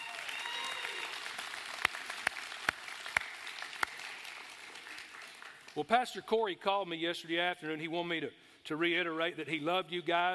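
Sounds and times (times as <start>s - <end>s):
audience applauding: 0.0s - 5.9s
sharp individual claps: 1.2s - 5.8s
speech: 5.8s - 10.3s.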